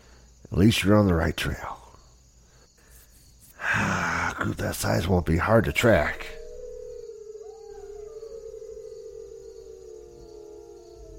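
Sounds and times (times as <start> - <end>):
speech: 0.5 - 1.8, 4.4 - 6.4
several wolves howling in chorus: 5.4 - 11.1.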